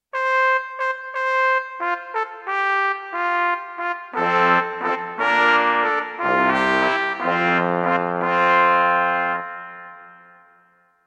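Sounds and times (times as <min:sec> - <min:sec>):
trumpet: 0:00.1 - 0:10.9.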